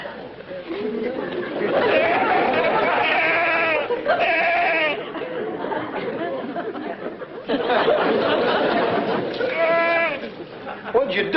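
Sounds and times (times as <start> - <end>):
laughter: 0.0 - 11.3
murmur of people talking: 0.0 - 11.3
goat bleating in a jail cell: 1.9 - 5.0, 9.4 - 10.4.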